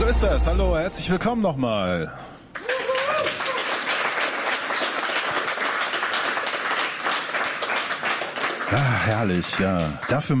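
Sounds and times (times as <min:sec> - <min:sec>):
speech: 0:00.1 - 0:02.7, 0:08.7 - 0:10.3
studio audience applause: 0:02.6 - 0:10.3.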